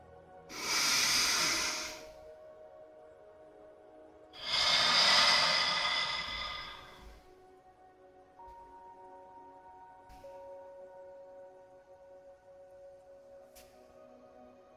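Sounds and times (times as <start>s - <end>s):
long airy exhale: 0.5s - 2.2s, 4.4s - 7.2s
slow deep breath in through the belly: 0.5s - 2.2s, 4.4s - 7.2s.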